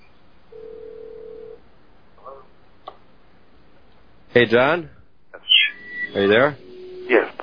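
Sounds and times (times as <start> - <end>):
telephone line ringing: 0.6 - 1.6
speech: 4.4 - 5.0, 6.1 - 7.4
faint electronic blips: 5.4 - 7.4.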